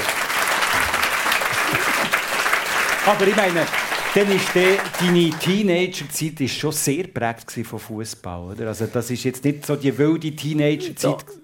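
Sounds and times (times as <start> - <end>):
audience applause: 0.0 - 5.6
speech: 3.1 - 11.4.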